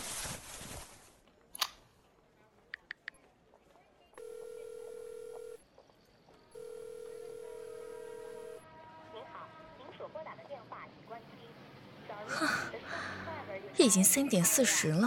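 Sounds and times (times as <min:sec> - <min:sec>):
steady electronic ringback tone of an unanswered phone call: 0:04.2 - 0:05.6, 0:06.6 - 0:08.6
soft breath: 0:12.3 - 0:13.4
speech: 0:13.8 - 0:15.0.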